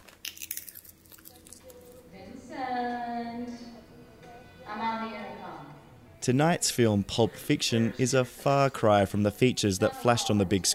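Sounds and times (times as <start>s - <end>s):
sunflower seeds being split between teeth: 0.0s - 2.0s
speech: 6.3s - 10.7s.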